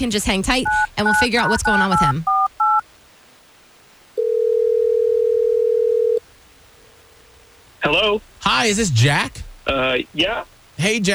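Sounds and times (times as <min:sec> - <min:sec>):
speech: 0:00.0 - 0:02.4, 0:07.8 - 0:11.1
steady telephone ring tone: 0:00.6 - 0:02.8, 0:04.2 - 0:06.2
telephone touch-tone dialing beep: 0:00.6 - 0:02.8.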